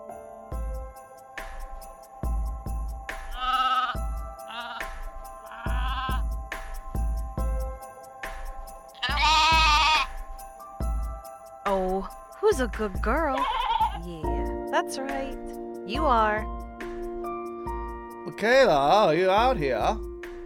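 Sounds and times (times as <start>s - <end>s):
steady rhythmic low thumping: 0.6s - 18.2s
sheep bleating in a two-eyed sheep exhibit: 3.4s - 4.9s, 5.5s - 6.2s, 9.0s - 10.1s, 13.3s - 14.1s
speech: 12.0s - 16.6s, 18.4s - 20.1s.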